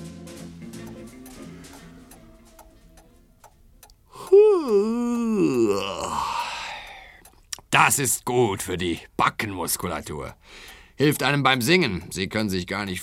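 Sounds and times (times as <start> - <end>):
soft steady ticking: 0.6 - 13.0
loud drawn-out human yawn: 4.1 - 7.2
speech: 8.0 - 13.0.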